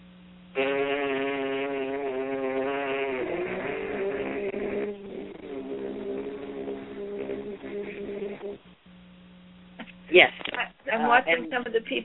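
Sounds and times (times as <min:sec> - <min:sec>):
horn player buzzing a note with the lips while singing another note: 0:00.5 - 0:08.6
speech: 0:10.2 - 0:12.0.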